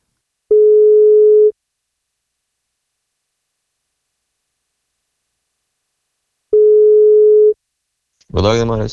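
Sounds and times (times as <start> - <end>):
telephone ringback tone: 0.5 - 1.5, 6.6 - 7.6
speech: 8.4 - 8.9.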